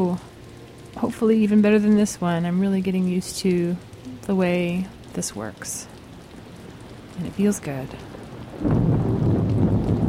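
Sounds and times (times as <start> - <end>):
steady hissing rain: 0.0 - 10.0
speech: 1.0 - 5.9, 7.2 - 8.8
deep rumble of rolling thunder: 8.1 - 10.0.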